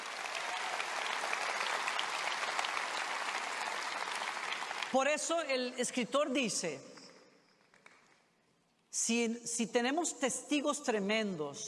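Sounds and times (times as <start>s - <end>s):
audience applause at a sermon or church gathering: 0.0s - 5.2s, 7.6s - 8.3s
speech: 4.9s - 6.9s, 9.0s - 11.6s.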